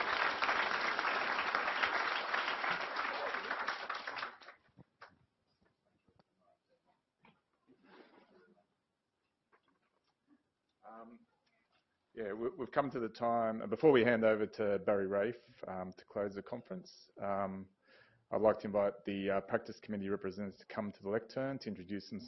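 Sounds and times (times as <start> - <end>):
conference audience applauding: 0.0 - 4.6
speech: 12.2 - 22.2.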